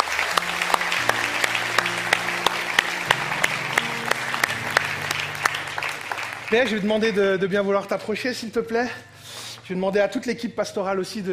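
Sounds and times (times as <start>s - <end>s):
audience applauding: 0.0s - 7.4s
speech: 6.5s - 9.1s, 9.7s - 11.3s.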